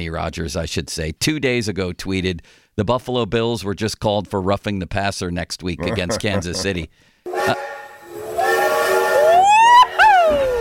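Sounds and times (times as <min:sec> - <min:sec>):
speech: 0:00.0 - 0:07.7
laughter: 0:05.8 - 0:06.9
steam train whistle: 0:07.3 - 0:10.5.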